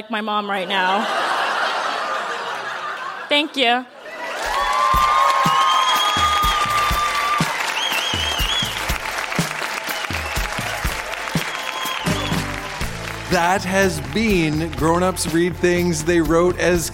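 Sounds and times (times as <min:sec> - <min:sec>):
speech: 0:00.0 - 0:01.2, 0:03.3 - 0:04.0, 0:13.3 - 0:16.9
laughter: 0:00.6 - 0:04.8
audience applause for readers: 0:04.1 - 0:15.4
scattered whoops and cheers: 0:04.2 - 0:12.8.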